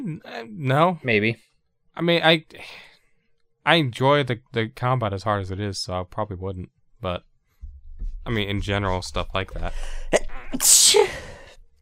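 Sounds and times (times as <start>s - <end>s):
speech: 0.1s - 2.9s, 3.6s - 7.3s, 8.2s - 11.4s
person sneezing: 10.5s - 11.5s.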